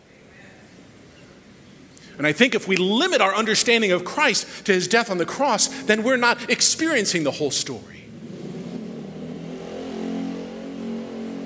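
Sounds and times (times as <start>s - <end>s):
speech: 2.2s - 8.0s
small engine of a motorized bicycle droning outside: 8.1s - 11.4s.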